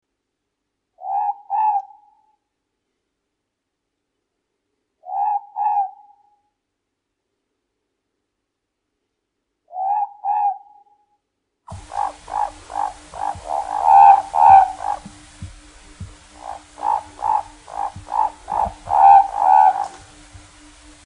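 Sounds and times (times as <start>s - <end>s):
morepork owl calling: 1.0s - 2.4s, 5.0s - 6.4s, 9.7s - 11.0s, 11.7s - 21.0s.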